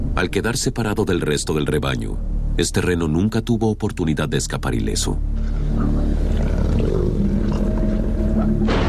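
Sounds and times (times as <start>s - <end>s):
speech: 0.2s - 6.3s
pack of wolves growling while feeding: 5.4s - 8.8s.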